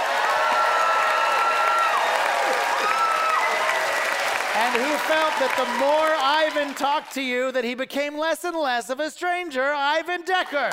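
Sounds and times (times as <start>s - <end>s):
crowd applauding: 0.0s - 7.4s
speech: 4.6s - 10.7s.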